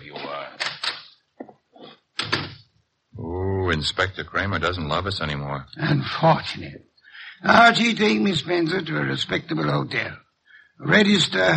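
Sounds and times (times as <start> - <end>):
heavy thump of a door closing: 2.2 - 2.6
speech: 3.7 - 10.2, 10.8 - 11.5.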